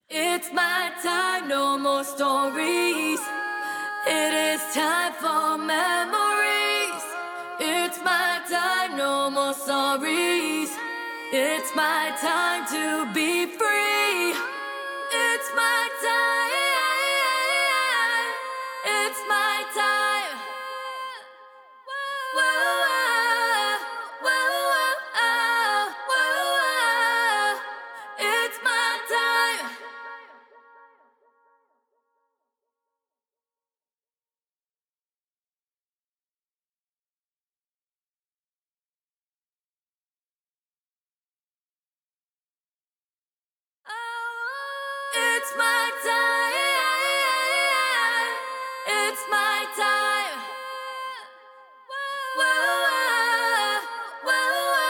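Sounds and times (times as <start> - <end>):
a cappella vocals: 0.0 - 31.6, 43.9 - 54.8.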